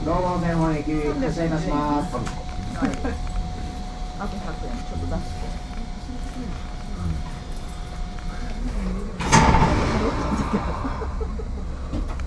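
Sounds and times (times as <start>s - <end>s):
steady low rumble of an idling train: 0.0s - 12.2s
speech: 0.1s - 3.3s, 4.2s - 7.3s, 10.0s - 12.0s
laughter: 2.7s - 3.4s, 9.7s - 12.2s
train sliding doors thumping shut: 9.2s - 12.2s.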